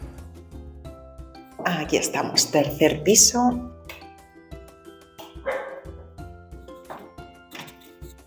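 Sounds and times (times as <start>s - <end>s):
speech: 1.7s - 3.8s
dog barking on the third floor of a building: 5.4s - 6.1s.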